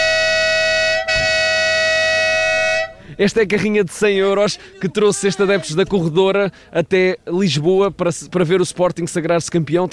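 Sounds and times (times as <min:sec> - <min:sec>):
van horn honking: 0:00.0 - 0:03.1
speech: 0:03.2 - 0:09.9.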